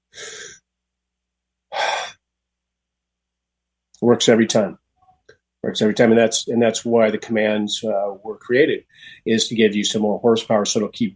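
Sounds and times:
breathy human exhalations: 0:00.0 - 0:00.6, 0:01.7 - 0:02.2, 0:08.9 - 0:09.3
speech: 0:04.0 - 0:04.8, 0:05.6 - 0:11.1.

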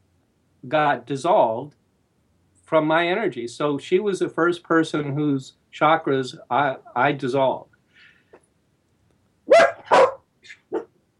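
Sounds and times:
speech: 0:00.6 - 0:01.8, 0:02.7 - 0:07.7
household dog barking: 0:09.5 - 0:11.0.

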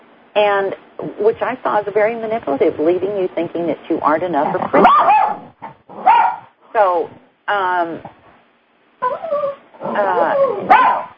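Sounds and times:
speech: 0:00.4 - 0:05.4, 0:06.8 - 0:08.2
dog whimpering and yipping: 0:09.0 - 0:11.1.

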